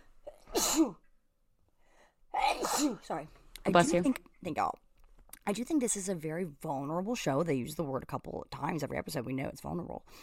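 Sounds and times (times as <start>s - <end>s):
person sneezing: 0.3s - 1.0s, 2.3s - 3.2s
speech: 0.8s - 1.0s, 2.8s - 4.8s, 5.4s - 10.2s.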